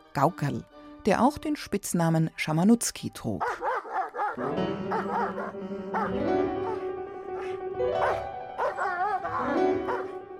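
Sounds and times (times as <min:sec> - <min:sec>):
speech: 0:00.2 - 0:03.8, 0:04.4 - 0:06.8, 0:07.8 - 0:08.3
small dog yapping and whining: 0:03.4 - 0:06.8, 0:07.4 - 0:10.1.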